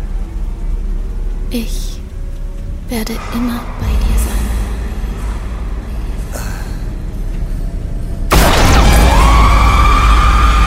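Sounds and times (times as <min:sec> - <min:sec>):
dense rumble: 0:00.0 - 0:10.6
speech: 0:01.5 - 0:02.0, 0:02.9 - 0:04.1
gunshot shattering a skull: 0:08.3 - 0:09.5.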